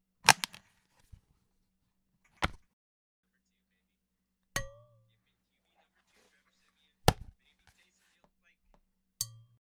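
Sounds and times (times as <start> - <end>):
percussion on household and office objects: 4.6 - 5.0, 9.2 - 9.6.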